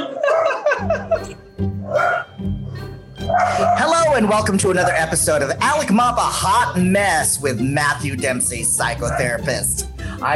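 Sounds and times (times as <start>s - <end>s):
several dogs barking excitedly with yips and woofs: 0.0s - 0.8s, 3.2s - 5.2s, 9.0s - 9.4s
laughter: 0.0s - 1.4s
speech: 4.2s - 10.3s.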